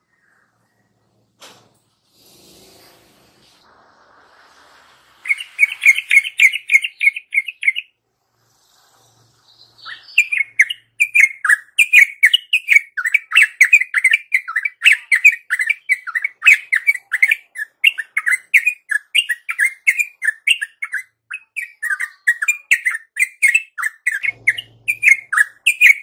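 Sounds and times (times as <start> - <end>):
yellow-vented bulbul chattering warbled song: 5.2 - 8.0, 9.4 - 26.0.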